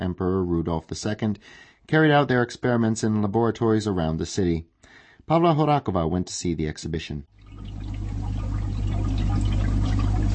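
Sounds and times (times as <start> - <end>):
speech: 0.0 - 7.7
liquid bubbling and gurgling: 7.4 - 10.3
low hum: 7.4 - 10.3.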